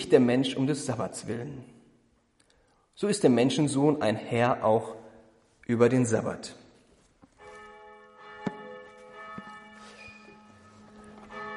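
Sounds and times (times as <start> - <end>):
speech: 0.1 - 1.8, 3.0 - 5.0, 5.7 - 6.6
church bells ringing: 7.3 - 11.5.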